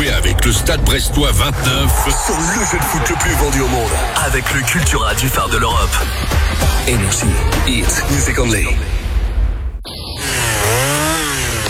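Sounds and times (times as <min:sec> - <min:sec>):
low rumble: 0:00.2 - 0:10.0
speech: 0:00.4 - 0:09.0
chainsaw engine buzzing: 0:09.9 - 0:11.6.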